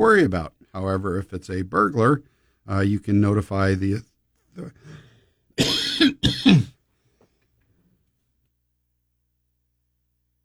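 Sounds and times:
speech: 0.0s - 5.0s, 5.6s - 6.7s
person coughing harshly: 5.6s - 6.8s.

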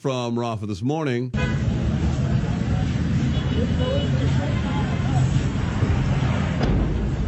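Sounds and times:
speech: 0.0s - 2.3s, 3.6s - 4.7s
shouts: 1.4s - 6.0s
rumble of engines and traffic: 1.4s - 7.2s
crowd babble of people fleeing an air raid: 1.5s - 7.2s.

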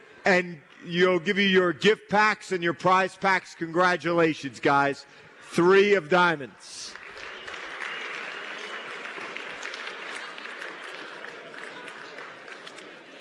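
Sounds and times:
speech: 0.2s - 7.0s
large audience applause: 6.9s - 13.1s.

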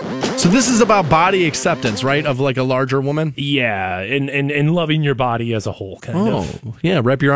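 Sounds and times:
pop song: 0.2s - 2.6s
speech: 0.4s - 7.3s.

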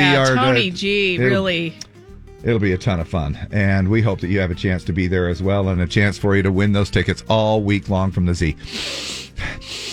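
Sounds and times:
speech: 0.0s - 9.8s
person sniffing the air: 8.6s - 9.9s.

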